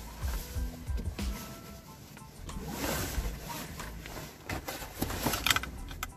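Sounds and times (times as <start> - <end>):
fabric rustling: 0.0 - 5.8
car seatbelt being pulled across and fastened: 5.0 - 6.1.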